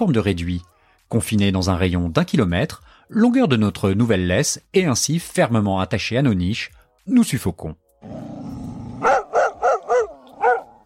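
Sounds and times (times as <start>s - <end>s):
speech: 0.0s - 8.4s
dog giving a low rumbling growl: 8.0s - 10.8s
dog barking sharply: 9.0s - 10.8s.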